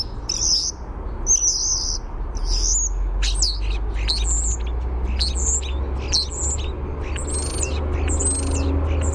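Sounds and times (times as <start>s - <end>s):
male European starling singing outside a nest cavity: 0.0s - 9.1s.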